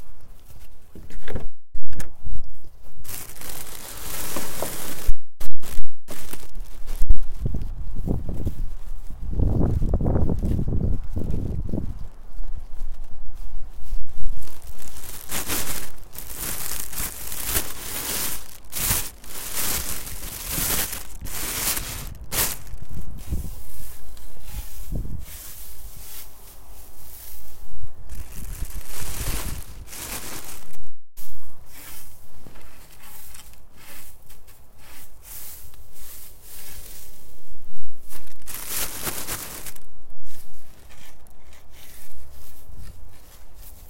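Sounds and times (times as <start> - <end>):
quiet outdoor background by a winter field: 0.0 - 43.8
plastic bag crinkling as dried radish strips are gathered from a drying rack: 3.0 - 7.5, 14.2 - 23.2, 28.1 - 30.8, 38.1 - 41.5.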